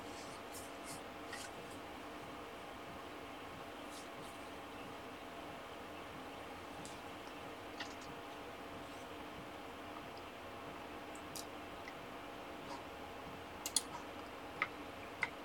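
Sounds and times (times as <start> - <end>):
computer fan whirring: 0.0 - 15.4
computer mouse clicks: 13.6 - 13.9.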